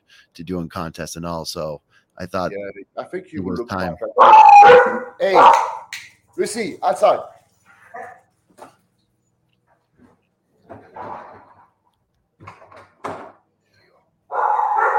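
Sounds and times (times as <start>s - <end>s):
speech: 0.4s - 7.4s
dogs barking: 4.1s - 5.9s, 7.8s - 8.3s, 14.3s - 14.9s.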